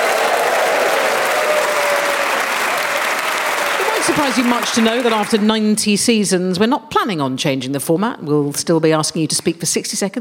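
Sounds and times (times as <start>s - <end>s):
studio audience applauding: 0.0s - 5.7s
speech: 4.1s - 10.1s.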